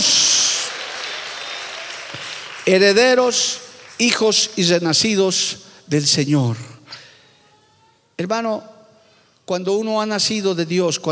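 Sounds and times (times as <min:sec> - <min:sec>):
audience applauding: 0:00.0 - 0:04.7
speech: 0:02.6 - 0:06.7, 0:08.2 - 0:08.7, 0:09.5 - 0:11.1.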